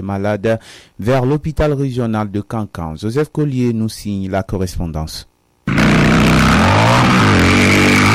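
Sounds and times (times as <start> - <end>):
speech: 0.0 - 7.2
motorcycles slowing on a degraded road of mud and standing water: 5.7 - 8.1.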